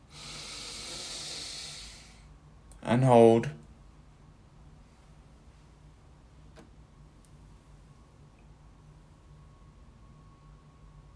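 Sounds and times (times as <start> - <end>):
slow inhale through the nose during a breathing exercise: 0.0 - 2.3
speech: 2.9 - 3.6.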